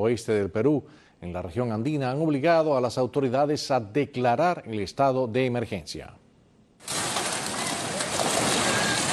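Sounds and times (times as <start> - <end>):
speech: 0.0 - 6.2
flooding river water roaring: 6.9 - 9.1.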